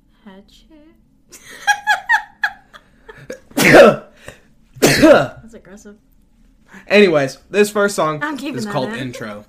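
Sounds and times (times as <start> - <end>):
speech: 0.3 - 1.7, 4.9 - 6.1, 6.7 - 9.4
loud explosive sneeze: 3.6 - 4.1, 4.8 - 5.4.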